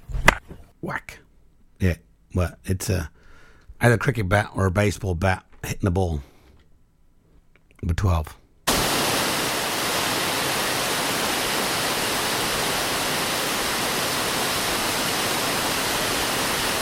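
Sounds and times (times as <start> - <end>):
speech: 0.8 - 1.2, 1.8 - 3.2, 3.8 - 6.3, 7.8 - 8.4
waterfall roar: 8.7 - 16.8.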